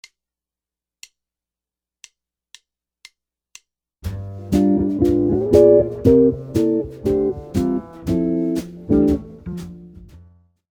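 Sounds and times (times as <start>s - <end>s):
jazz guitar chord licks: 4.1s - 10.2s.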